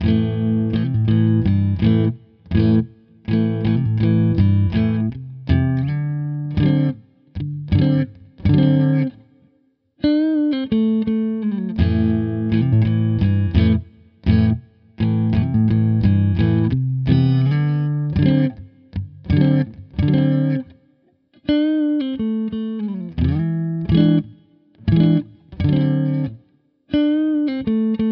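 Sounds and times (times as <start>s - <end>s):
clean electric guitar on full neck pickup: 0.0s - 28.1s.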